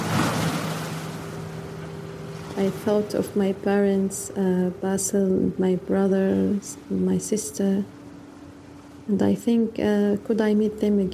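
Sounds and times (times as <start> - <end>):
gusting wind: 0.0 - 2.7
large waves crashing: 0.0 - 2.9
faint steady low hum: 0.0 - 11.1
speech: 2.6 - 8.0, 9.1 - 11.1.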